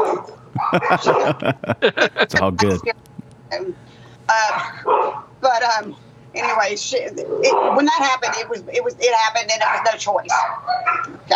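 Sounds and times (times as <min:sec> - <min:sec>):
dog barking and yelping: 0:00.0 - 0:01.4, 0:07.3 - 0:08.5, 0:09.5 - 0:11.2
speech: 0:00.2 - 0:11.3
laughter: 0:00.6 - 0:02.9.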